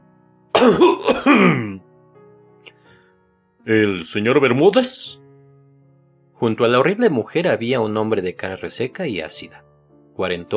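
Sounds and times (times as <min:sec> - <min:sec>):
speech: 0:00.6 - 0:01.7, 0:03.6 - 0:05.2, 0:06.4 - 0:10.5
narrator coughing as a character clearing his throat: 0:00.6 - 0:01.8.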